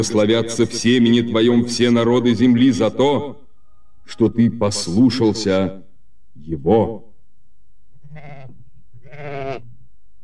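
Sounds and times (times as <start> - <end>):
speech: 0.0 - 3.4, 4.1 - 5.8, 6.4 - 7.1
ram caught by its horns in a thicket bleating: 8.0 - 9.7.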